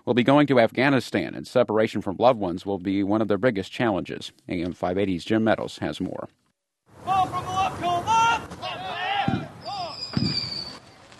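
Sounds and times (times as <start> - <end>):
speech: 0.1 - 6.4
stadium crowd cheering and calling: 7.0 - 10.0
fireworks booming outdoors at a stadium: 8.4 - 11.1
firework whistling streak: 9.2 - 11.1.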